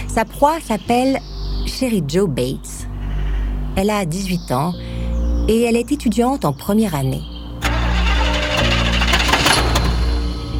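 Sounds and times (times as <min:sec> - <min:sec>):
speech: 0:00.2 - 0:02.8, 0:03.7 - 0:04.9, 0:05.5 - 0:07.3
car engine cranking without catching: 0:07.6 - 0:10.5.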